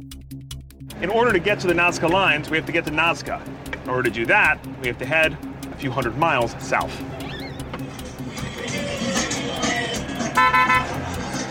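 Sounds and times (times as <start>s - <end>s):
steady rumble of engines in busy street traffic: 0.9s - 11.4s
speech: 1.0s - 7.2s
loud car horn honking in street traffic: 10.2s - 11.0s.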